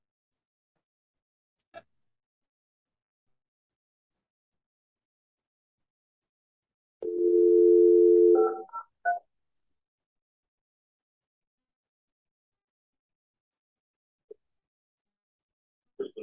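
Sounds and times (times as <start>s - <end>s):
speakerphone dial tone: 7.0s - 8.7s
touch-tone dialing beeps: 7.0s - 9.2s.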